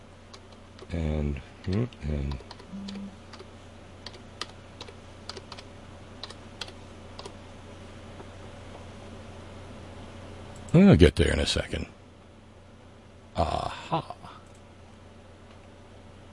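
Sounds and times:
steady low electrical hum: 0:00.0 - 0:16.3
speech: 0:00.9 - 0:03.2, 0:10.8 - 0:12.0, 0:13.4 - 0:14.2
clicky computer keyboard typing: 0:01.6 - 0:07.4.

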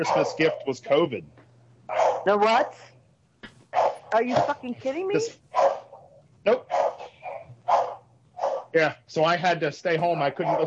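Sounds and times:
dog barking: 0:00.0 - 0:01.1, 0:01.9 - 0:02.9, 0:03.7 - 0:04.6, 0:05.5 - 0:08.8, 0:10.2 - 0:10.6
speech: 0:00.0 - 0:01.4, 0:02.2 - 0:02.9, 0:04.1 - 0:05.8, 0:06.4 - 0:06.7, 0:08.7 - 0:10.6
low steady hum: 0:00.0 - 0:10.6.

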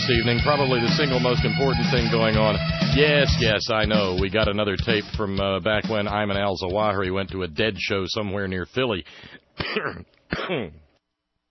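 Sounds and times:
speech: 0:00.1 - 0:10.8
person clearing throat: 0:09.6 - 0:10.9.

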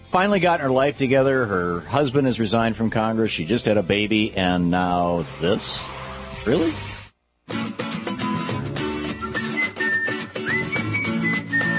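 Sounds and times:
dense steady musical backing: 0:00.0 - 0:11.7
speech: 0:00.1 - 0:06.9
person whistling sustained upward-sliding notes: 0:09.0 - 0:11.7.

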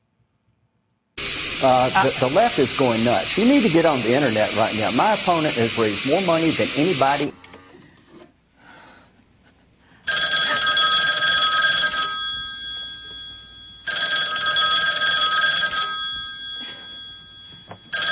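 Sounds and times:
speech: 0:01.6 - 0:07.4
loud telephone bell ringing: 0:10.1 - 0:18.0.

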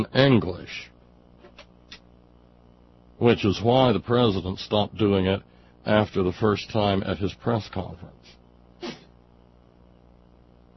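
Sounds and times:
speech: 0:00.0 - 0:00.9, 0:03.2 - 0:09.0
person sneezing: 0:08.2 - 0:09.2.

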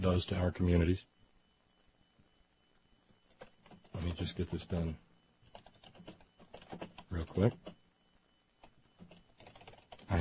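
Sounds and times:
speech: 0:00.0 - 0:01.2, 0:04.0 - 0:05.1, 0:07.1 - 0:07.8
typing on a computer keyboard: 0:03.2 - 0:04.8, 0:05.4 - 0:07.8, 0:08.6 - 0:10.1.

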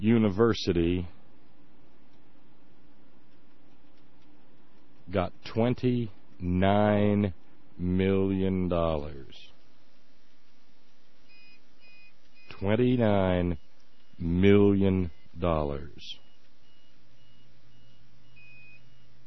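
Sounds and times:
speech: 0:00.0 - 0:01.2, 0:05.1 - 0:09.5, 0:12.6 - 0:13.6, 0:14.2 - 0:16.2
power backup unit beeping during a power outage: 0:11.2 - 0:19.2.

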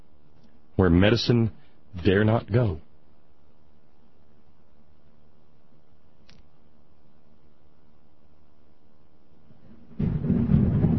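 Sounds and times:
speech: 0:00.8 - 0:02.9
loud crack of thunder: 0:09.7 - 0:10.9
deep sustained thunder rumble: 0:09.9 - 0:10.9.

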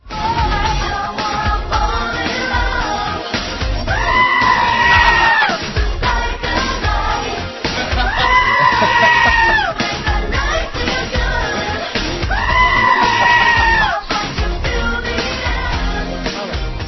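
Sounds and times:
upbeat pop song: 0:00.0 - 0:16.8
goat screaming edited into a pop song: 0:03.9 - 0:05.6, 0:08.0 - 0:09.8, 0:12.3 - 0:14.0
laughter: 0:07.5 - 0:14.0.

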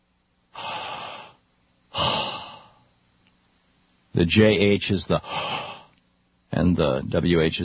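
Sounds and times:
person voicing the divine name without vowels as breathy exhales: 0:00.6 - 0:02.8, 0:05.2 - 0:06.0
speech: 0:04.2 - 0:05.7, 0:06.5 - 0:07.6.

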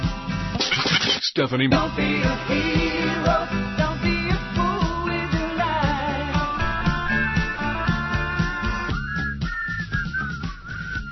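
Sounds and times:
steady rhythmic backing music: 0:00.0 - 0:01.1, 0:01.7 - 0:11.1
speech: 0:01.4 - 0:04.0
person whistling a tune: 0:06.8 - 0:11.1.

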